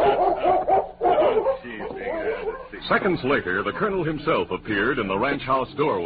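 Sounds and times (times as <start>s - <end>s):
large German shepherd dog barking a welcome at a ranch: 0.0s - 2.8s
speech: 2.8s - 6.0s.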